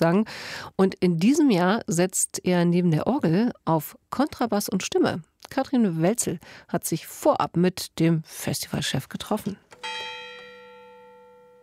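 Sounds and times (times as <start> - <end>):
speech: 0.0 - 10.2
church bells of a castle church ringing: 9.8 - 11.6.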